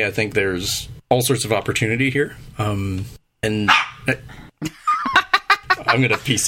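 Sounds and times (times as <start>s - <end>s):
speech: 0.0s - 4.8s, 5.9s - 6.4s
dog barking: 3.7s - 4.0s
laughter: 4.6s - 6.4s.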